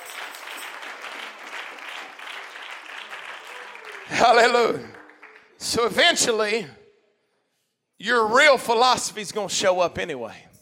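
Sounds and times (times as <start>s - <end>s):
large group of people clapping their hands: 0.0s - 5.9s
speech: 4.1s - 5.0s, 5.6s - 6.8s, 8.0s - 10.5s.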